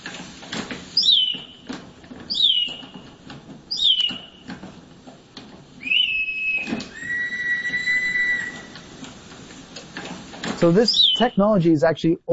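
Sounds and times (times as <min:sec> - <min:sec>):
faint clicking clockwork machinery: 0:00.0 - 0:11.4
clockwork mechanical bird whistling birdsong: 0:01.0 - 0:01.6, 0:02.3 - 0:02.9, 0:03.7 - 0:04.4, 0:05.8 - 0:08.9, 0:10.7 - 0:11.4
speech: 0:10.6 - 0:12.3.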